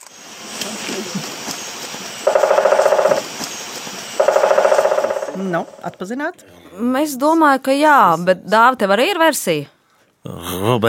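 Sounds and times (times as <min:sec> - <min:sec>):
speech: 0:01.2 - 0:01.4, 0:05.4 - 0:10.8
woodpecker drumming on a tree: 0:01.5 - 0:06.0.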